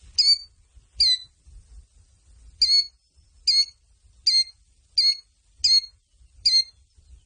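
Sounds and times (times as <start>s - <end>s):
faint low rumble: 0.0s - 7.2s
killdeer calling: 0.2s - 1.3s, 2.6s - 7.2s.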